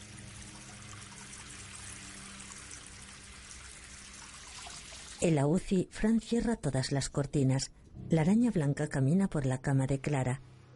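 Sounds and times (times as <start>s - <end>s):
tap water pouring from a bathroom sink faucet: 0.0s - 5.2s
person washing their face at a sink: 0.5s - 5.2s
speech: 5.2s - 10.6s.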